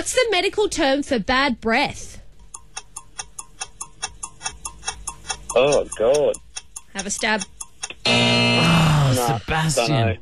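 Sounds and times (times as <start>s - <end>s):
speech: 0.0s - 2.2s, 5.5s - 6.4s, 7.0s - 10.2s
quiz show countdown timer ticking: 2.4s - 10.0s.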